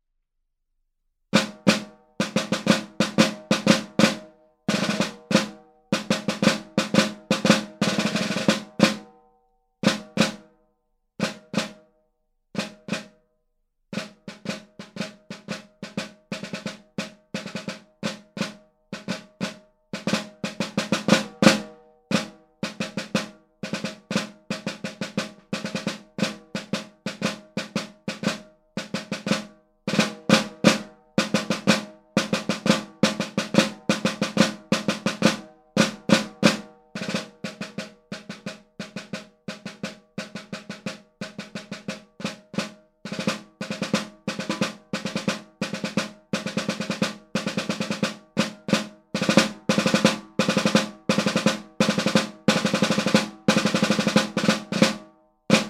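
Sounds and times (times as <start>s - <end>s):
snare drum practice: 1.4s - 9.1s, 9.8s - 10.5s, 11.2s - 11.8s, 12.6s - 13.2s, 14.0s - 55.6s.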